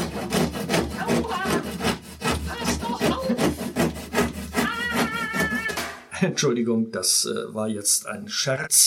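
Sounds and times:
hand saw rasping through wood: 0.0 - 5.9
speech: 6.2 - 8.8.

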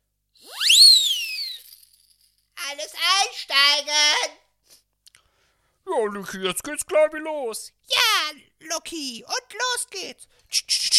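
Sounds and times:
conductor's whistle signalling a train's departure: 0.4 - 1.8
speech: 2.8 - 4.4, 5.9 - 10.8.

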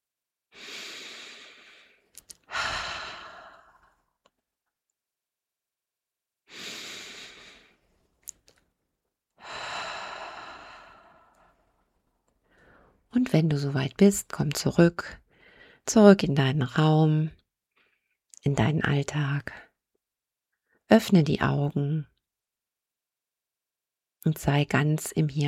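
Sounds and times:
deep slow breathing during a guided meditation: 0.6 - 4.1, 6.5 - 7.9, 9.4 - 11.8
speech: 13.2 - 15.2, 15.9 - 17.4, 18.4 - 19.6, 20.9 - 22.1, 24.2 - 25.4.

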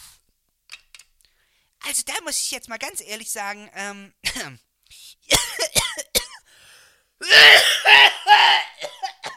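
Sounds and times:
speech: 1.9 - 5.4, 7.3 - 8.7
harsh rasping hacking coughing fit: 4.2 - 4.6, 5.3 - 6.4, 7.2 - 9.3.

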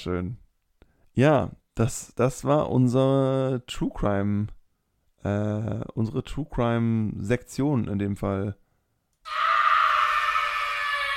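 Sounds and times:
speech: 0.0 - 0.4, 1.2 - 4.6, 5.2 - 8.6, 9.2 - 9.5
person screaming in place of a jingle: 9.3 - 11.1.

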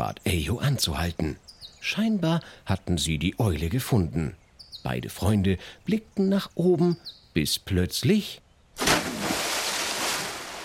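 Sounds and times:
speech: 0.0 - 8.9
water splashing from a bucket: 8.8 - 10.6.

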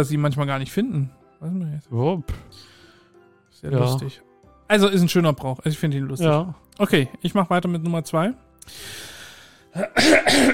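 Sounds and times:
speech: 0.0 - 2.7, 3.6 - 9.1, 9.7 - 10.5
person clearing throat: 9.8 - 10.5.

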